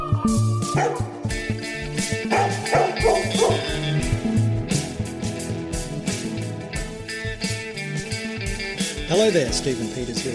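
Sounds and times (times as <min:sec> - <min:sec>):
upbeat music track with steady bass and drum beat: 0:00.0 - 0:10.3
speech: 0:00.2 - 0:01.5, 0:09.2 - 0:10.3
dogs barking and yipping: 0:00.6 - 0:04.0.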